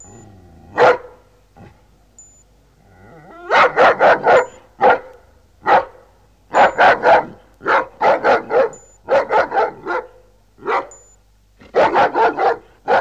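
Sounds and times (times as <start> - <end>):
dog barking: 0.8 - 1.2, 3.4 - 12.9.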